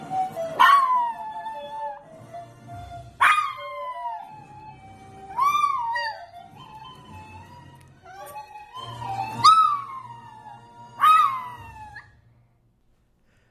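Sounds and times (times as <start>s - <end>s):
small dog howling: 0.3s - 2.1s, 3.1s - 6.9s, 7.5s - 12.1s.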